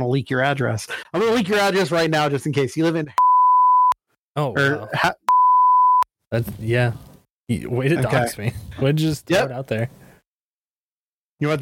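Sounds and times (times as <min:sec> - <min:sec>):
speech: 0:00.0 - 0:03.2, 0:04.4 - 0:05.2, 0:06.3 - 0:10.0, 0:11.4 - 0:11.6
steady censor bleep tone: 0:03.2 - 0:04.0, 0:05.3 - 0:06.1.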